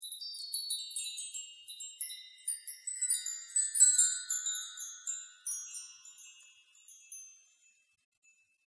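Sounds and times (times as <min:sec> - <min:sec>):
slow chimes: 0:00.0 - 0:08.6.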